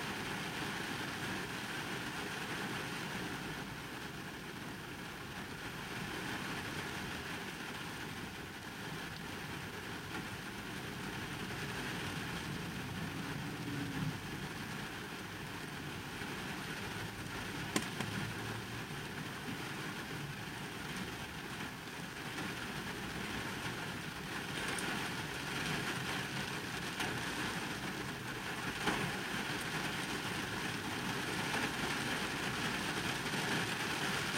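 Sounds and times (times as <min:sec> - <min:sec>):
heavy rain drumming on a car roof heard from inside the empty cabin: 0:00.0 - 0:34.3
sharp tap: 0:17.7 - 0:18.2.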